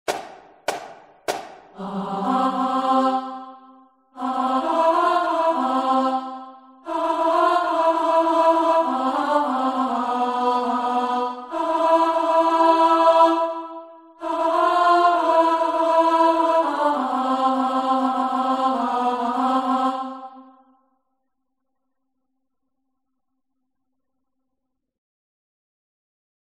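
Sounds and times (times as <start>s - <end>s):
chorus singing in harmony: 0.8s - 20.7s.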